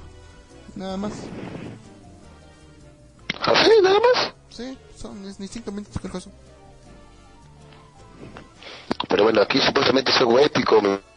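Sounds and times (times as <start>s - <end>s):
speech: 0.8s - 1.9s, 3.7s - 6.6s, 9.1s - 11.1s
heavy explosion from an animated fight scene: 1.2s - 1.9s.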